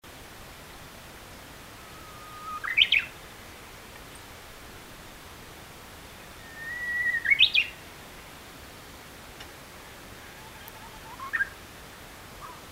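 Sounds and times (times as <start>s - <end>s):
Japanese bush warbler first song of the year: 1.8s - 4.5s, 6.1s - 7.9s, 10.4s - 11.6s.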